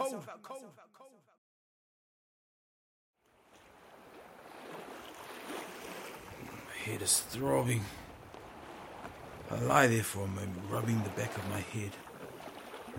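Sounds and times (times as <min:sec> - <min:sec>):
speech: 0:00.1 - 0:01.1, 0:06.9 - 0:08.0, 0:09.5 - 0:12.0
crashing waves: 0:03.3 - 0:12.9
roar of churning water in a giant whirlpool: 0:03.3 - 0:12.9.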